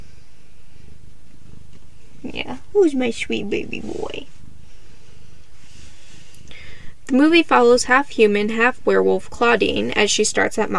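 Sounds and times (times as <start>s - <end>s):
speech: 2.2s - 4.3s, 7.1s - 10.7s
domestic cat purring: 2.2s - 4.5s.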